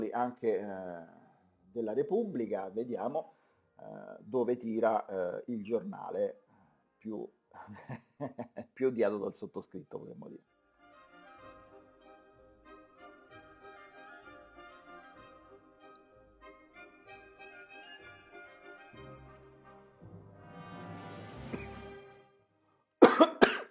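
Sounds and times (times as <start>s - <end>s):
speech: 0.0s - 1.2s, 1.8s - 6.4s, 7.0s - 10.5s
faint tonal background: 0.0s - 23.6s
person coughing after choking on coffee: 23.0s - 23.6s
throat clearing: 23.0s - 23.6s.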